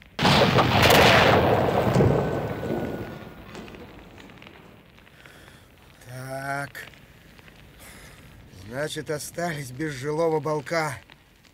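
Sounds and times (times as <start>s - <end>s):
loud explosion of signal rockets and gas cylinders: 0.0s - 5.1s
speech: 8.8s - 11.1s.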